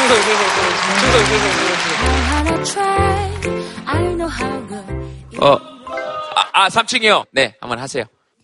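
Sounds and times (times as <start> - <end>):
crowd applauding: 0.0 - 3.5
speech: 0.1 - 8.2.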